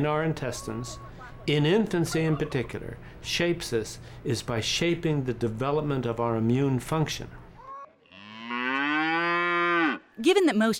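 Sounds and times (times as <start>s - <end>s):
speech: 0.0s - 7.4s, 10.2s - 10.7s
laughter: 0.5s - 3.0s
cow mooing: 7.7s - 10.1s.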